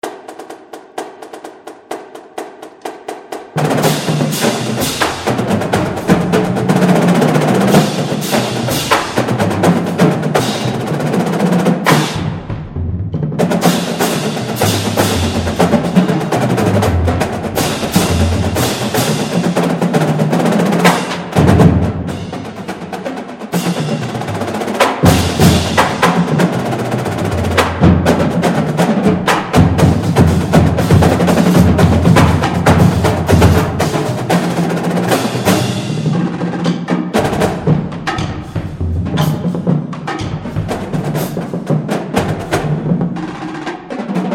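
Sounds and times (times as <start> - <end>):
drum corps drum line playing: 0.0 - 44.3.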